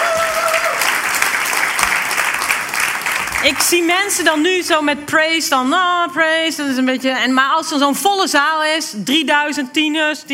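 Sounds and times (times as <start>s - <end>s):
large audience applauding after a worship set: 0.0s - 3.9s
speech: 3.4s - 10.3s.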